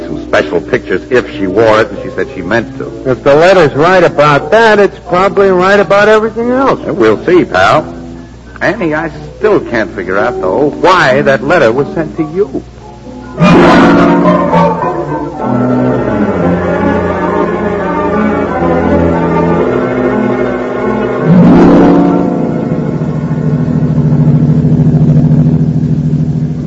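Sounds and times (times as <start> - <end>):
speech: 0.1 - 8.0, 8.6 - 12.7
car engine roaring as the car drives fast through fog: 12.7 - 26.6.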